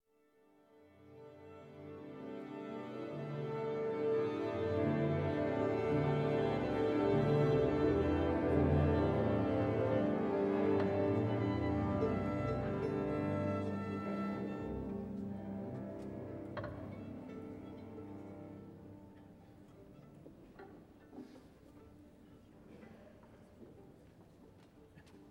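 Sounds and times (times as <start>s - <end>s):
violin tuning: 3.0s - 21.2s.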